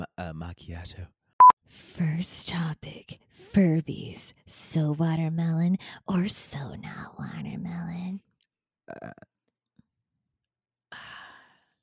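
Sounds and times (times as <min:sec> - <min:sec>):
speech: 0:00.3 - 0:08.3, 0:08.9 - 0:09.3
burp: 0:08.9 - 0:09.3
breathy sigh: 0:10.9 - 0:11.6.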